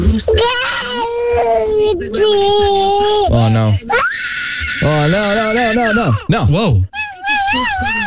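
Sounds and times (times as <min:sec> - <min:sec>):
toddler crying in a tantrum: 0:00.4 - 0:03.3, 0:03.9 - 0:06.3, 0:07.0 - 0:08.0
speech: 0:03.3 - 0:03.9, 0:04.9 - 0:08.0.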